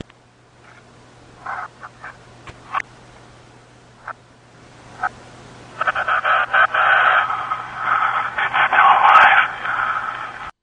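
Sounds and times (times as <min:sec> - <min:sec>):
radio static played in reverse: 0:01.4 - 0:02.8, 0:04.0 - 0:10.6.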